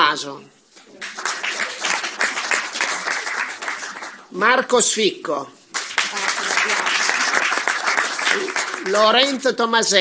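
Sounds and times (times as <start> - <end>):
speech: 0.1 - 1.2, 4.3 - 5.6, 8.4 - 10.0
audience applause: 1.0 - 4.4, 5.7 - 9.4.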